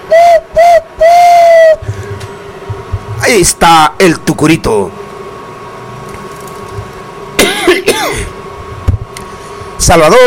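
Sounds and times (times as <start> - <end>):
quiet hum: 0.0 - 10.2
speech: 3.3 - 5.0, 9.8 - 10.2
rough throat-clearing coughs: 7.4 - 8.3.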